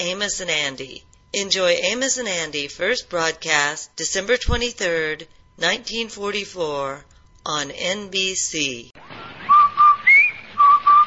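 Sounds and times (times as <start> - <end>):
speech: 0.0 - 9.0
whistled laundry soap advertising jingle: 9.2 - 11.0.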